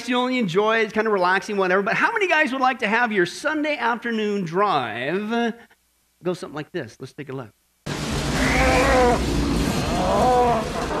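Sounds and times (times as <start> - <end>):
speech: 0.0 - 7.6
rumbling noise: 7.9 - 10.9
cow mooing: 8.3 - 10.9.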